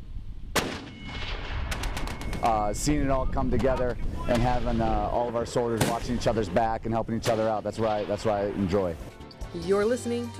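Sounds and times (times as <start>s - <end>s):
machine gun shots at army live-fire training: 0.5s - 2.8s, 3.5s - 6.4s, 7.2s - 8.8s
heavy mortar blast at army live-fire training: 0.5s - 8.9s
speech: 2.4s - 10.3s.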